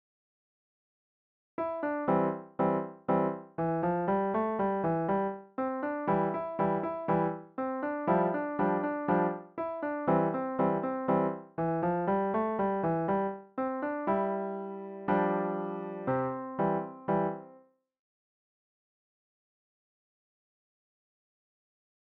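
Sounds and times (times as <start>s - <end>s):
piano: 1.6s - 17.7s.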